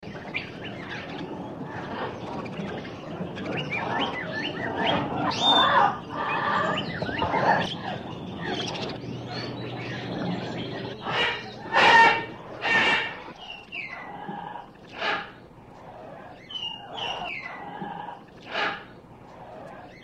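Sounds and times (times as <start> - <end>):
tropical birds calling in a pet store: 0.0 - 20.0.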